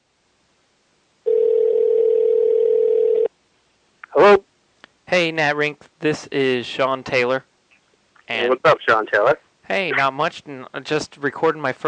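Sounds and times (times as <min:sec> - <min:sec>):
steady unbroken telephone dial tone: 0:01.3 - 0:03.3
speech: 0:05.1 - 0:07.5, 0:08.3 - 0:11.8.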